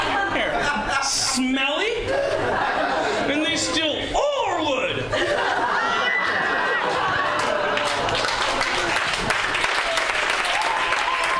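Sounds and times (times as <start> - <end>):
laughter: 0.0 - 10.1
people whooping: 5.8 - 11.3
crowd applauding: 6.1 - 11.3.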